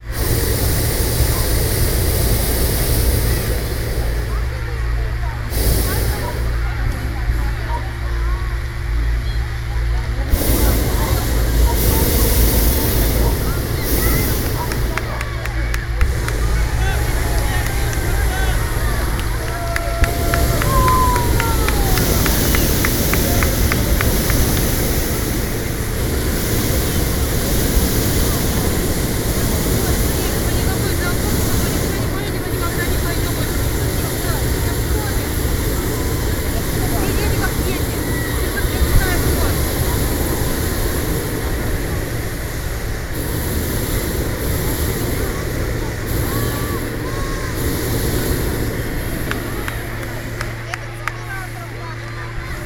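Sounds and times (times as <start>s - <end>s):
balloon festival: 0.0s - 52.6s.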